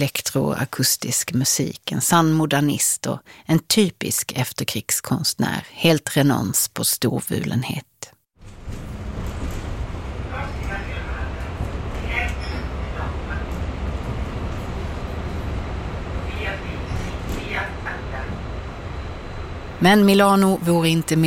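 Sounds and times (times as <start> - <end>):
speech: 0.0 - 7.9, 19.8 - 21.2
moving tram rumble and rolling hum in Milan: 8.4 - 21.2.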